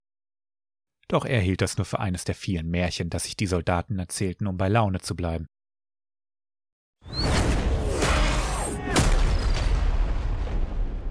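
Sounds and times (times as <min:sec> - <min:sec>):
speech: 0:01.1 - 0:05.6
loud sudden explosion boom: 0:07.2 - 0:11.0.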